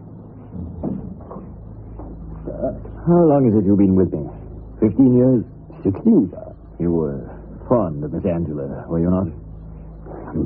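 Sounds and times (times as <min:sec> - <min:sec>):
low steady room hum: 0:00.0 - 0:10.4
door being pushed shut with a soft knock: 0:00.5 - 0:02.2
speech: 0:02.5 - 0:09.4.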